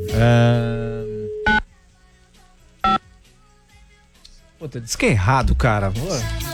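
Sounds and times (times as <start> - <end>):
speech: 0.1 - 0.8, 4.7 - 6.5
telephone keypad beeps dialing a call: 1.0 - 1.7.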